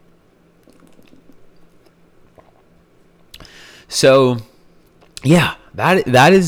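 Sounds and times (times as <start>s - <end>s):
person sipping and swallowing coconut water: 0.6s - 3.6s
speech: 3.9s - 4.5s, 5.2s - 6.4s.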